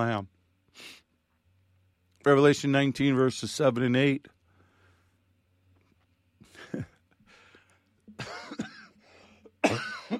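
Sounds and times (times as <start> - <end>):
speech: 0.0 - 1.0, 2.2 - 4.4, 9.6 - 10.1
person coughing: 8.2 - 10.1
throat clearing: 9.6 - 10.1.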